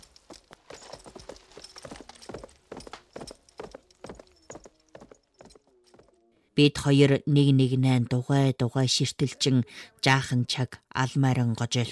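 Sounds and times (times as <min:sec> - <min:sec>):
horse hooves as horses are led at a walk: 0:00.0 - 0:06.3
speech: 0:06.6 - 0:11.9.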